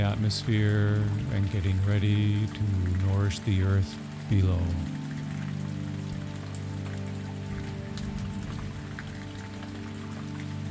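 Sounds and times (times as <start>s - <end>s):
speech: 0.0s - 5.0s
low humming drone: 0.0s - 10.6s
rain falling: 0.0s - 10.6s.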